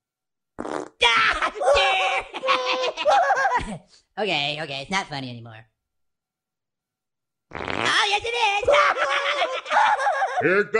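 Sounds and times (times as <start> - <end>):
fart: 0.6 - 1.0, 7.5 - 8.1
laughter: 1.4 - 3.8, 8.6 - 10.7
speech: 2.2 - 5.7, 7.5 - 10.7.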